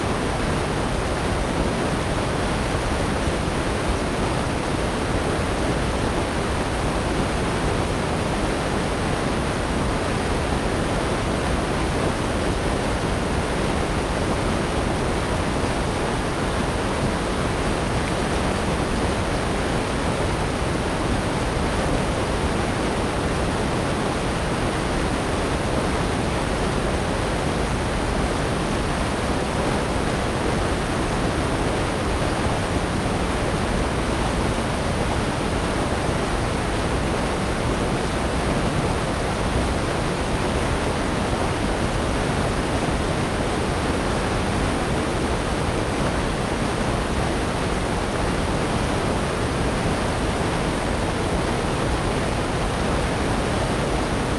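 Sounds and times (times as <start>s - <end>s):
waterfall: 0.0s - 54.3s.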